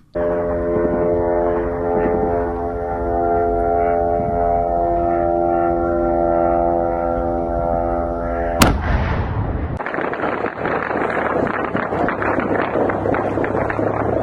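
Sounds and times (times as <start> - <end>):
kamikaze drone buzzing over Kyiv: 0.0 - 14.2.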